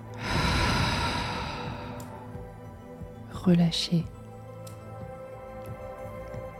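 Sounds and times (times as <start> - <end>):
forceful exhale through the mouth in a relaxation breathing exercise: 0.2 - 2.2
speech: 3.4 - 4.2.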